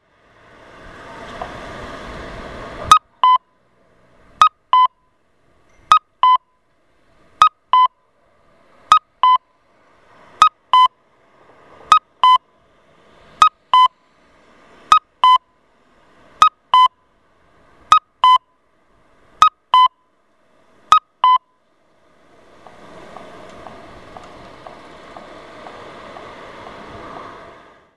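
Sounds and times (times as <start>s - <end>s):
audible traffic signal kakko tone in Toyokawa Aichi: 2.8s - 3.7s, 4.4s - 6.7s, 7.4s - 8.2s, 8.8s - 11.0s, 11.8s - 12.5s, 13.4s - 14.0s, 14.9s - 15.6s, 16.4s - 17.2s, 17.8s - 18.7s, 19.4s - 20.2s, 20.9s - 21.6s.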